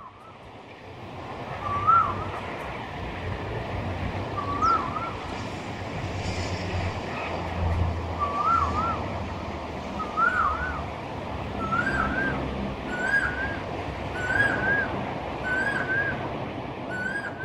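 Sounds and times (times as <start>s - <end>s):
city traffic noise: 0.0s - 17.4s
bird rising warbling whistled call: 4.4s - 5.2s, 8.2s - 9.0s, 10.0s - 10.8s, 11.6s - 13.6s, 14.2s - 16.2s, 16.9s - 17.4s.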